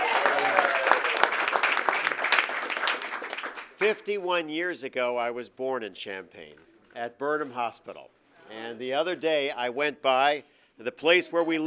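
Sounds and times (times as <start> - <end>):
crowd applauding: 0.0 - 3.8
speech: 3.8 - 11.6.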